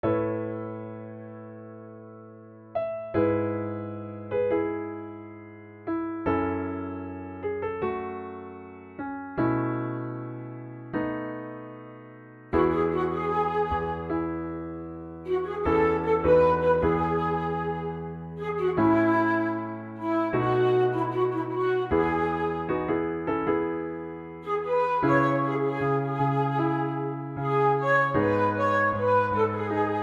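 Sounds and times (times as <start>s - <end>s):
piano: 0.0s - 30.0s
flute: 12.6s - 30.0s.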